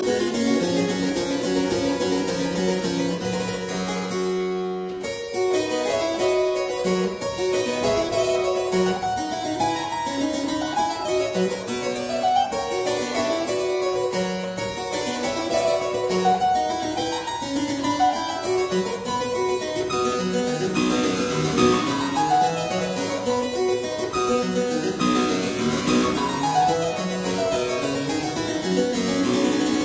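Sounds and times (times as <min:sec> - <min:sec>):
keyboard sonata: 0:00.0 - 0:29.8.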